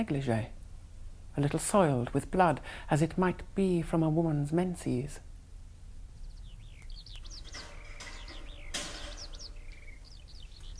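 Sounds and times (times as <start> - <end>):
speech: 0.0 - 0.6, 1.4 - 5.3
steady hiss: 0.0 - 10.7
small bird chirping: 6.0 - 10.7.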